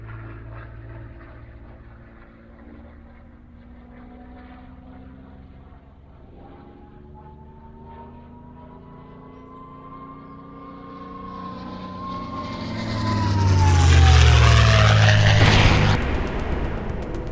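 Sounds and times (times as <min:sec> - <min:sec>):
plane crashing: 0:13.6 - 0:17.3.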